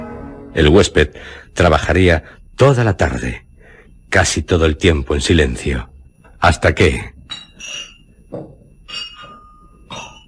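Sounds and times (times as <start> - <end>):
speech: 0.5 - 3.4, 4.1 - 9.0
glass bottles clinking against each other: 7.2 - 10.2.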